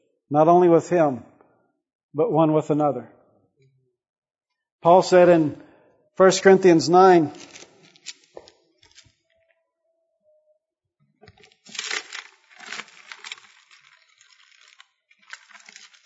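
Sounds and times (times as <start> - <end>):
speech: 0.3 - 1.3, 2.1 - 3.2, 4.8 - 7.6
pages of a book turning: 7.2 - 9.2, 11.2 - 16.0.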